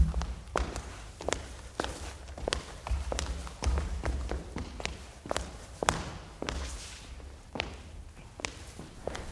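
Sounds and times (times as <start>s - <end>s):
low constant hum: 0.0s - 0.6s
footsteps walking along a hard corridor floor: 0.0s - 7.0s, 8.3s - 9.2s.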